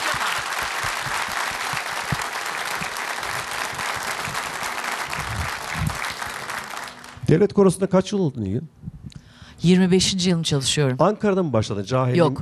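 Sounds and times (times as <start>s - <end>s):
audience applause after a Turkish folk song performance: 0.0s - 7.3s
speech: 7.3s - 8.8s, 9.6s - 12.4s.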